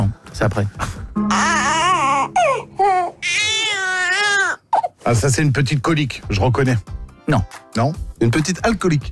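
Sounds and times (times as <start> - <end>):
speech: 0.4 - 3.6, 5.0 - 9.0
sleepy baby crying: 1.3 - 5.0.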